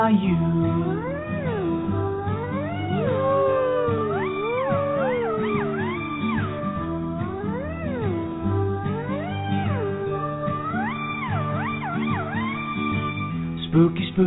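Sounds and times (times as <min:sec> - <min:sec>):
steady musical backing: 0:00.1 - 0:14.1
black cat meowing: 0:01.0 - 0:10.0.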